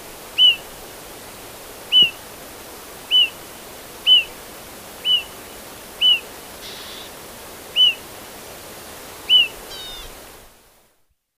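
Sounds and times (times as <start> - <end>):
steady hiss: 0.0 - 11.1
pied bush chat whistled calls: 0.4 - 0.6, 1.9 - 2.2, 3.1 - 3.4, 4.1 - 4.3, 5.0 - 5.3, 6.0 - 7.1, 7.8 - 8.0, 9.3 - 10.1.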